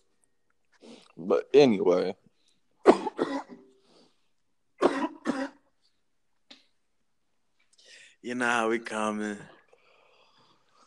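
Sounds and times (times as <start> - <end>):
speech: 1.2 - 2.3, 8.2 - 9.6
person coughing harshly: 2.8 - 3.7, 4.8 - 5.7.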